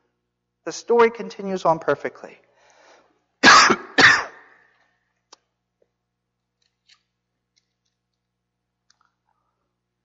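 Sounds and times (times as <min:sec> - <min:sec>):
speech: 0:00.7 - 0:02.4
harsh coughs with throat clearing: 0:03.4 - 0:04.5.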